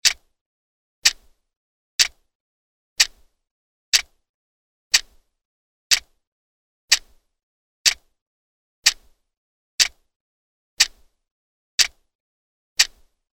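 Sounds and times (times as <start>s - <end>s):
clock ticking: 0.0s - 0.4s, 1.0s - 1.4s, 2.0s - 2.3s, 3.0s - 4.2s, 4.9s - 5.3s, 5.9s - 6.2s, 6.9s - 8.2s, 8.8s - 9.2s, 9.8s - 10.1s, 10.8s - 11.2s, 11.8s - 12.1s, 12.8s - 13.2s.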